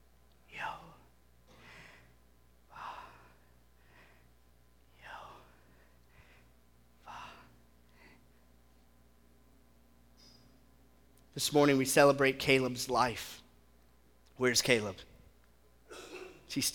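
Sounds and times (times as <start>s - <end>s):
person breathing slowly in and out: 0.5s - 8.4s
speech: 11.4s - 13.4s, 14.4s - 15.1s, 15.9s - 16.7s.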